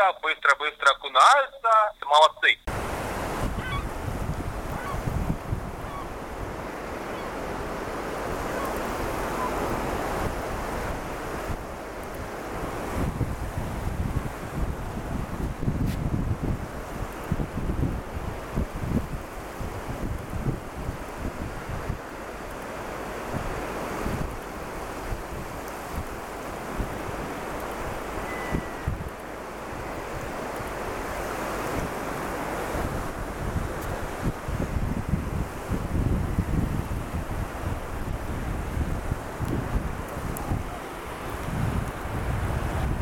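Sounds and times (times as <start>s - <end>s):
speech: 0.0s - 3.0s
sea surf with waves washing in on the shore: 0.0s - 43.0s
gusty wind buffeting the microphone: 2.7s - 43.0s.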